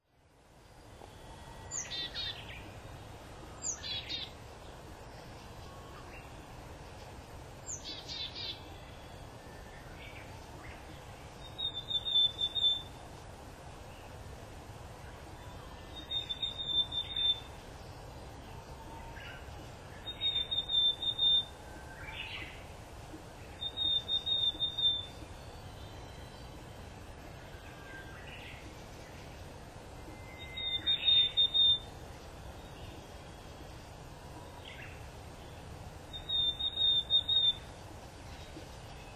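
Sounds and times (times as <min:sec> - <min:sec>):
willow tit calling: 0:07.7 - 0:10.3, 0:10.9 - 0:13.0, 0:15.4 - 0:18.1, 0:19.0 - 0:22.6, 0:23.4 - 0:29.2, 0:30.0 - 0:39.1.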